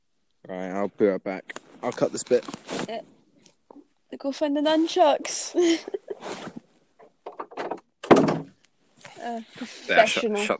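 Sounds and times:
speech: 0:00.4 - 0:03.2, 0:04.1 - 0:06.6, 0:09.2 - 0:10.5
door shutting: 0:07.3 - 0:08.6.

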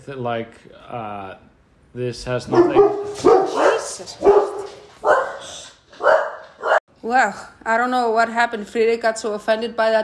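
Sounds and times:
speech: 0:00.0 - 0:05.6, 0:07.0 - 0:10.0
dog barking: 0:02.5 - 0:06.8.

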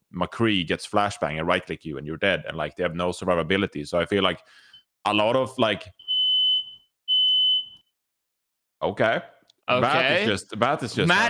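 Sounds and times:
speech: 0:00.1 - 0:06.0, 0:08.8 - 0:11.2
smoke detector alarm going off with high-pitched beeps: 0:06.0 - 0:07.9.

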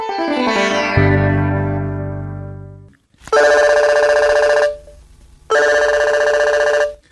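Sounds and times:
falling electronic tone: 0:00.0 - 0:02.9
electronic telephone ringing on an outgoing call: 0:03.3 - 0:04.9, 0:05.5 - 0:07.0.

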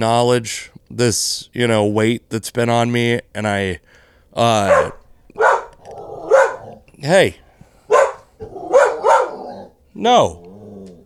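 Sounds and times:
speech: 0:00.0 - 0:05.0, 0:07.0 - 0:07.4, 0:10.0 - 0:10.5
dog barking: 0:04.6 - 0:06.8, 0:07.9 - 0:09.8.

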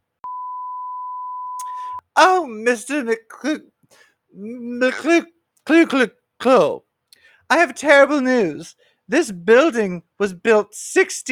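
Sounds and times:
long steady electronic voicemail beep: 0:00.2 - 0:02.0
speech: 0:02.2 - 0:06.8, 0:07.5 - 0:11.2.

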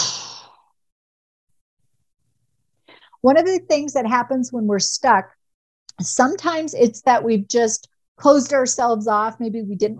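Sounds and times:
forced exhale during a breathing exercise: 0:00.0 - 0:00.8
speech: 0:03.2 - 0:05.4, 0:06.0 - 0:09.9.

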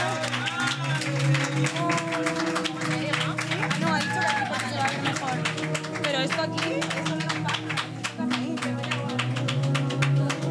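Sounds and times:
people cheering: 0:00.0 - 0:08.4
audience clapping for a guest actor: 0:00.0 - 0:10.4.

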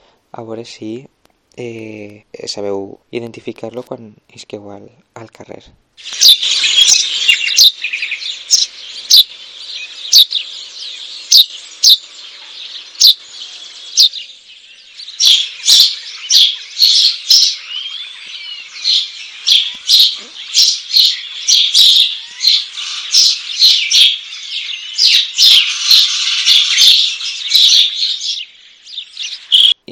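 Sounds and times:
speech: 0:00.3 - 0:06.3
house sparrows chirping: 0:06.0 - 0:29.8.

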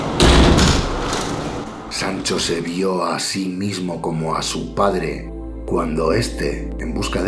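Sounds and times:
steel-tipped wooden beam battering ram pounding a wooden door: 0:00.1 - 0:01.4
speech: 0:02.0 - 0:07.2.

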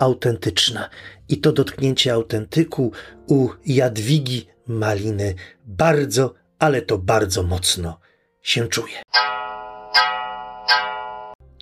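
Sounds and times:
speech: 0:00.0 - 0:09.4
clock chiming in a living room: 0:09.1 - 0:11.4.

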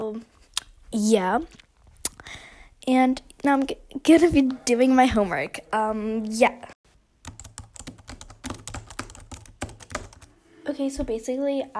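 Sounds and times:
speech: 0:00.1 - 0:01.6, 0:02.8 - 0:06.8, 0:10.8 - 0:11.7
computer keyboard typing: 0:07.2 - 0:10.3.

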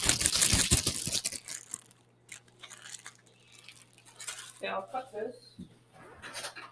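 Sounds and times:
packet of icing mix crinkling and tearing: 0:00.0 - 0:04.9
speech: 0:04.6 - 0:05.7.

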